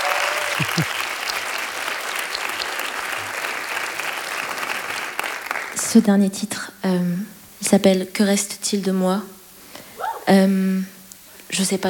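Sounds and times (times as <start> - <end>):
faint cheers: 0.0 - 1.6, 10.0 - 10.3
crowd clapping: 0.0 - 6.0
speech: 0.6 - 1.0, 5.9 - 9.4, 10.3 - 11.8.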